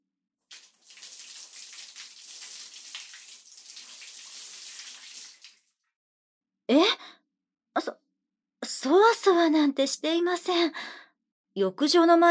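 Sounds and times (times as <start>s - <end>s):
water poured in a bath to wash someone's back: 0.5s - 5.7s
speech: 8.8s - 11.0s, 11.6s - 12.3s.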